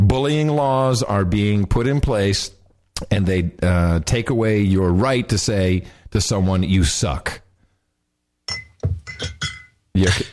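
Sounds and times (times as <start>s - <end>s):
speech: 0.1s - 7.4s, 10.0s - 10.3s
glass scotch bottle clinking against a hard surface: 8.5s - 10.3s.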